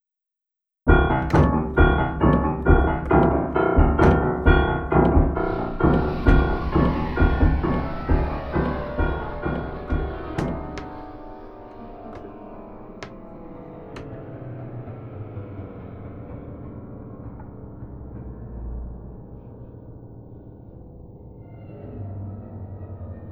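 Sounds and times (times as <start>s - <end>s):
Schimmel upright piano effects: 0.9s - 14.2s.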